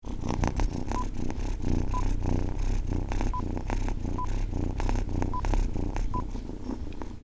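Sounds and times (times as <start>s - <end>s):
kitten purring: 0.0s - 7.2s.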